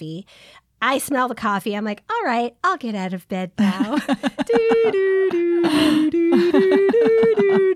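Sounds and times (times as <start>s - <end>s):
speech: 0.0s - 7.4s
laughter: 3.6s - 7.7s
person yawning with a breathy gasp while stretching: 5.5s - 6.5s.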